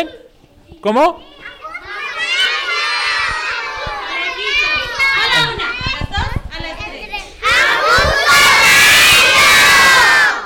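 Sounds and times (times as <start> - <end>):
speech: 0.0 - 0.2, 0.8 - 1.3
group of children chanting a phrase in unison: 1.4 - 5.5, 7.4 - 10.4.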